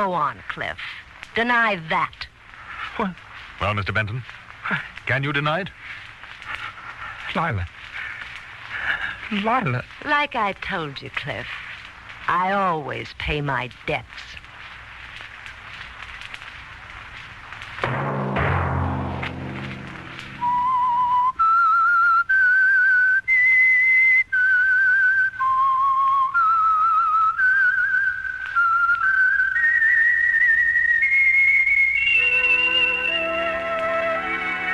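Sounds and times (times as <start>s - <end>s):
speech: 0.0s - 2.3s, 2.9s - 6.0s, 7.3s - 7.8s, 9.3s - 11.6s, 12.3s - 14.4s
orchestral music: 17.8s - 21.0s, 32.1s - 34.7s
whistled melody: 20.2s - 34.7s.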